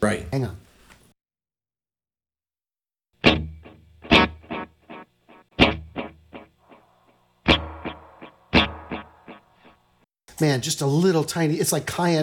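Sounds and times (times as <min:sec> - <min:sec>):
speech: 0:00.0 - 0:00.6, 0:10.4 - 0:12.2
smeared reverb wash: 0:06.6 - 0:09.8
plucked or struck hits through an echo delay pedal with fading echo repeats: 0:07.5 - 0:09.4.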